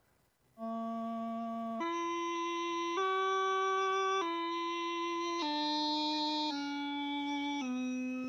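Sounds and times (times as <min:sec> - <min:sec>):
bagpipe playing a simple children's melody without grace notes: 0:00.6 - 0:08.2.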